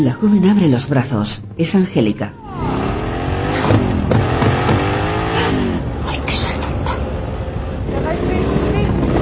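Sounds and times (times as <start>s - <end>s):
speech: 0.0s - 2.8s
busy street noise: 0.0s - 9.1s
motorcycle engine revving through streets: 1.4s - 6.0s, 7.0s - 9.1s.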